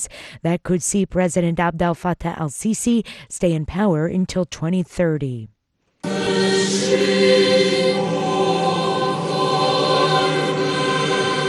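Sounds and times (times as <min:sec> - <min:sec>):
speech: 0:00.0 - 0:05.6, 0:06.7 - 0:07.8
choir singing during Easter Mass at the Vatican in Rome: 0:06.0 - 0:11.4.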